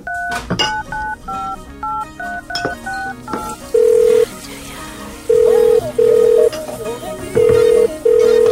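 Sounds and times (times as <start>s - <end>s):
telephone number dialled as short bright key-press tones: 0.0s - 4.3s, 5.3s - 6.6s, 7.4s - 8.4s
busy background: 0.0s - 8.4s.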